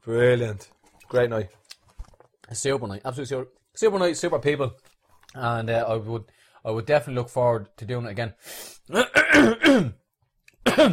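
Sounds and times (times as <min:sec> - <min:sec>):
speech: 0:00.0 - 0:01.6, 0:02.5 - 0:10.0, 0:10.7 - 0:10.9
coughing from someone with something stuck in the throat: 0:08.9 - 0:10.0, 0:10.6 - 0:10.9
throat clearing from someone with something stuck in the throat: 0:08.9 - 0:10.0, 0:10.6 - 0:10.9.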